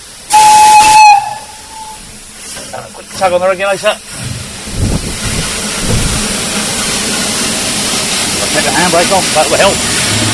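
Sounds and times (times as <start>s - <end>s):
steam hissing around the locomotive whistle: 0.0s - 10.3s
steam locomotive whistle blast: 0.2s - 2.1s
speech: 3.2s - 4.1s, 8.6s - 10.0s.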